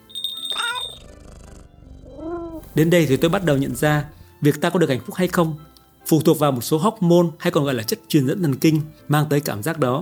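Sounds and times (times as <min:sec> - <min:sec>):
domestic cat meowing: 0:00.5 - 0:01.2, 0:02.1 - 0:02.7
speech: 0:02.8 - 0:10.0.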